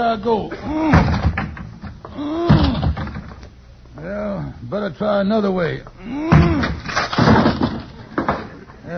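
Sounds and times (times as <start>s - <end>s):
speech: 0.0s - 1.3s, 2.2s - 2.8s, 4.0s - 7.4s
shoulder ramming a wooden closet door: 0.8s - 1.7s, 2.4s - 3.4s, 6.3s - 8.4s
person groaning with strain: 2.1s - 3.0s, 6.0s - 6.8s
person grunting: 2.1s - 3.0s, 6.0s - 6.8s.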